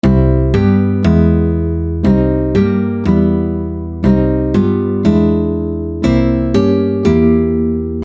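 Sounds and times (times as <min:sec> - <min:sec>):
nylon string guitar playing Alpine folk music: 0:00.0 - 0:08.0.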